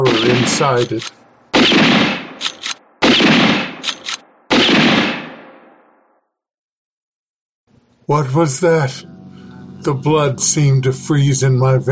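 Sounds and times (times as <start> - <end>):
lever-action rifle gunshots fired into a tent: 0.0 - 5.8
speech: 0.1 - 2.1, 8.1 - 9.2, 9.8 - 11.8.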